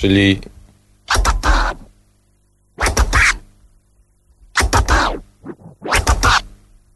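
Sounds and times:
speech: 0:00.0 - 0:00.5
turntable two-click flare scratch chopped by the crossfader: 0:01.1 - 0:01.9, 0:02.8 - 0:03.4, 0:04.6 - 0:06.5.

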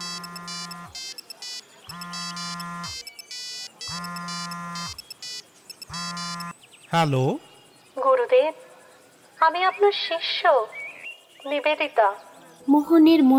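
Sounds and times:
phone electronic ringtone with incoming call: 0:00.0 - 0:06.6
speech: 0:06.9 - 0:07.5, 0:08.3 - 0:08.7, 0:09.4 - 0:10.8, 0:11.4 - 0:13.3.

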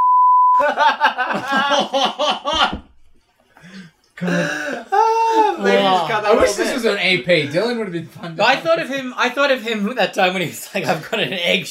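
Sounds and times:
censor bleep tone over spoken words: 0:00.0 - 0:00.6
people laughing: 0:00.6 - 0:02.8, 0:04.2 - 0:07.7
speech: 0:00.6 - 0:02.8, 0:04.2 - 0:05.0, 0:05.6 - 0:11.6.

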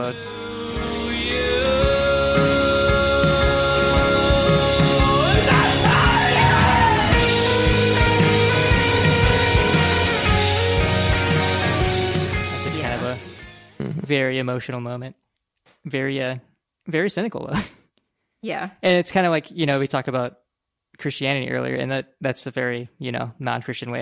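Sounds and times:
speech: 0:00.0 - 0:00.6, 0:14.1 - 0:15.2, 0:15.8 - 0:17.8, 0:18.4 - 0:24.0
loud dense rock music: 0:00.0 - 0:13.8
distorted guitars: 0:00.0 - 0:14.2
pounding drums: 0:03.2 - 0:13.5
male singer yelling hoarsely at the end of a song: 0:03.4 - 0:07.3.

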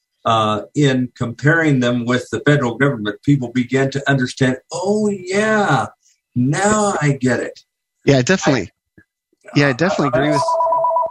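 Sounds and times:
speech: 0:00.2 - 0:08.8, 0:09.5 - 0:10.6
telephone ringing with a warbling electronic trill: 0:09.8 - 0:11.0.

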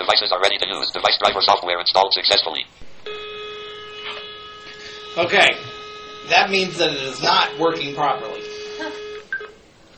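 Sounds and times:
speech: 0:00.1 - 0:02.9, 0:05.2 - 0:09.0
electronic telephone line tone from a newly plugged-in device on a computer: 0:03.0 - 0:09.5.

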